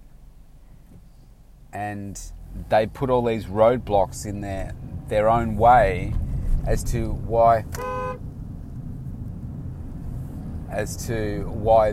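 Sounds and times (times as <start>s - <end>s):
road noise: 0.0s - 11.9s
running engine rumbling: 0.0s - 11.9s
speech: 1.7s - 8.0s, 10.7s - 11.9s
car horn honking: 7.7s - 8.3s.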